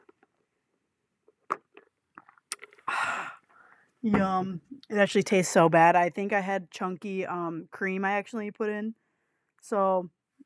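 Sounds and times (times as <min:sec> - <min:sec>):
soft wet clicks and mouth sounds: 0:01.5 - 0:02.9
speech: 0:04.0 - 0:09.0, 0:09.6 - 0:10.2.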